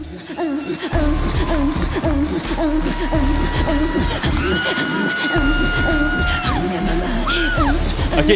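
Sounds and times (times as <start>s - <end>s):
noisy crowd murmuring and shouting in a large hall: 0.0s - 8.3s
speech: 0.1s - 8.3s
woman screaming and whooping excitedly in a large hall: 2.8s - 7.8s.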